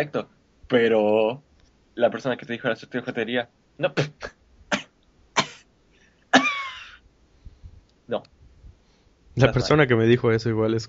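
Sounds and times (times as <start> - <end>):
speech: 0.0 - 4.4, 8.1 - 8.3, 9.4 - 10.8
coughing: 3.9 - 7.0.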